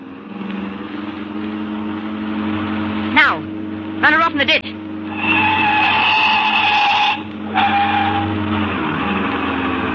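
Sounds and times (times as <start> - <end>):
car engine humming on a road: 0.0 - 9.9
speech: 4.0 - 4.7.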